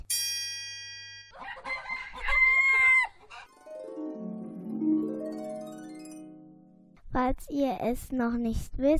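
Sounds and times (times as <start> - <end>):
rooster crowing: 1.4 - 3.6
wavering tonal sound: 3.5 - 7.0
speech: 7.2 - 8.9.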